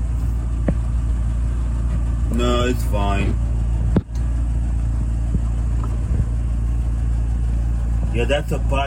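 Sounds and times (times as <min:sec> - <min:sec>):
car engine droning with low rumbling tone: 0:00.0 - 0:08.8
speech: 0:02.7 - 0:03.5, 0:08.2 - 0:08.8.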